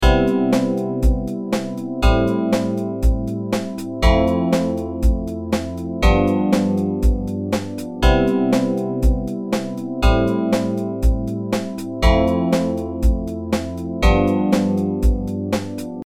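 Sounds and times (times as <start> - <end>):
Cmaj7 Am7 Fmaj7 G7 chord progression: 0.0 - 16.0.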